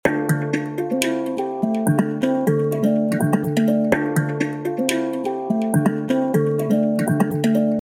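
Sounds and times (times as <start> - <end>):
handpan: 0.0 - 7.8.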